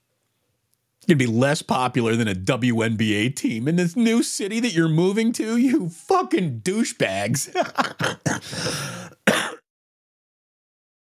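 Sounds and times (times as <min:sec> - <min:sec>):
speech: 0:01.1 - 0:09.2
laughter: 0:07.1 - 0:09.0
harsh coughing: 0:07.5 - 0:09.6.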